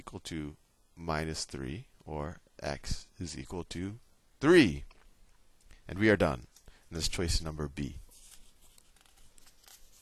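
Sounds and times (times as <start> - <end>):
speech: 0.1 - 4.9, 5.9 - 8.0
paper page being turned: 8.1 - 9.9.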